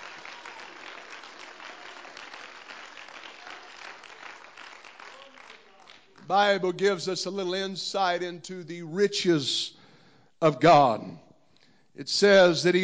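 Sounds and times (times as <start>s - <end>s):
large audience clapping hands in applause: 0.0s - 6.4s
speech: 6.3s - 9.8s, 10.4s - 11.2s, 12.0s - 12.8s.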